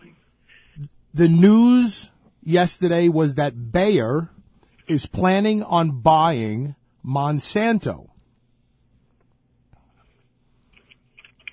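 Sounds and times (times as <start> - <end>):
low hum: 0.0 - 11.5
speech: 0.8 - 8.1
typing on a computer keyboard: 10.8 - 11.5.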